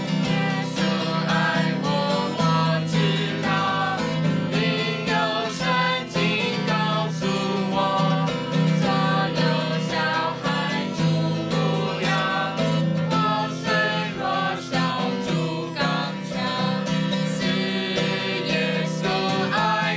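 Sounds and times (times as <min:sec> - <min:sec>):
person singing a hymn with Chinese lyrics: 0:00.2 - 0:19.9.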